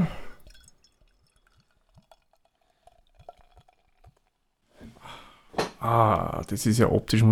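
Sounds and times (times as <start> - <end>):
beer being poured from a bottle into a glass: 0.0 - 4.6
breathy exhales: 4.8 - 5.6
speech: 5.8 - 7.3.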